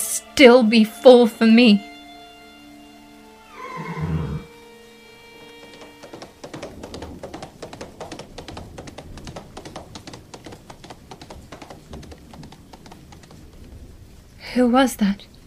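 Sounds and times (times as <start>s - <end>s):
speech: 0.4s - 1.9s, 14.6s - 15.3s
horse whinnying: 3.5s - 4.5s
horse hooves clattering as it rides off: 3.8s - 14.4s.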